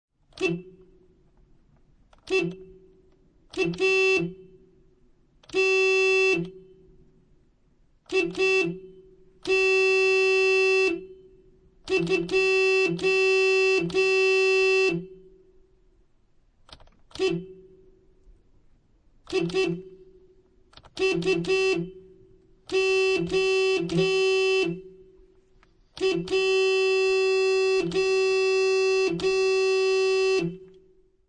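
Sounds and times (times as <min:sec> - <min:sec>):
car horn honking heard from car interior: 0:00.3 - 0:01.1, 0:02.2 - 0:04.8, 0:05.4 - 0:07.1, 0:08.1 - 0:15.5, 0:17.1 - 0:18.0, 0:19.2 - 0:25.4, 0:26.0 - 0:31.2.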